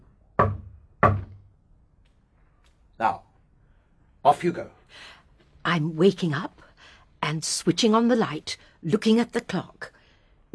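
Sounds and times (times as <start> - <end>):
heavy bangs on a communicating door between rooms: 0.4 - 1.5
speech: 3.0 - 3.2, 4.2 - 5.1, 5.7 - 6.7, 7.3 - 10.5.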